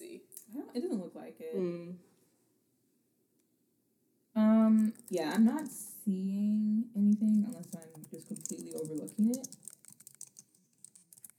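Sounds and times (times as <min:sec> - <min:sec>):
speech: 0:00.7 - 0:02.1, 0:04.7 - 0:09.6
typing on a computer keyboard: 0:04.8 - 0:05.7, 0:07.2 - 0:11.3.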